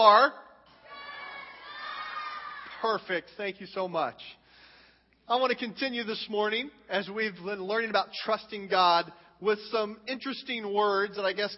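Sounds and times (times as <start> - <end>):
speech: 0.0 - 0.5, 2.8 - 4.4, 5.3 - 11.5
large crowd in a church screaming a phrase together: 0.8 - 2.8.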